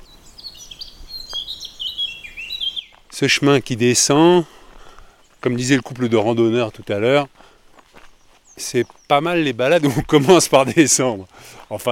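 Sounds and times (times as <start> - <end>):
birds chirping in a forest of cedars and larches: 0.0 - 11.9
speech: 3.2 - 4.6, 5.4 - 7.4, 8.6 - 11.9
laughter: 9.8 - 11.0.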